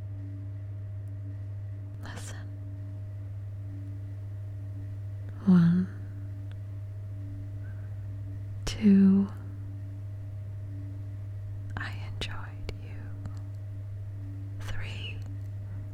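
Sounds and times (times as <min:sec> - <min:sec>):
steady low mechanical hum: 0:00.0 - 0:15.9
person whispering: 0:02.0 - 0:02.5, 0:11.7 - 0:13.4, 0:14.6 - 0:15.3.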